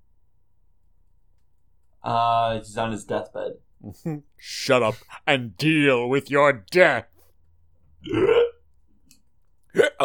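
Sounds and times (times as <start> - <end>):
speech: 2.0 - 7.1, 8.0 - 8.5
abrupt vocal sound: 8.0 - 8.6, 9.8 - 10.0
loud throaty hiccup: 8.0 - 8.6.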